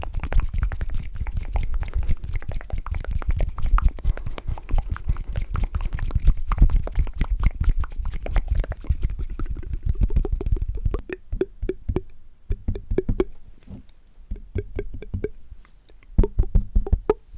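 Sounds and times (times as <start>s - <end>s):
dry mouth clicks and smacks: 0.0s - 17.2s.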